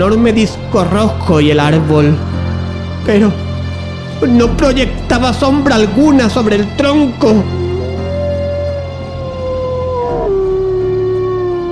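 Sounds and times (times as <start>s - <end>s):
speech: 0.0s - 2.3s, 3.0s - 3.4s, 4.2s - 7.6s
chorus of wolves howling at dawn: 7.1s - 11.7s.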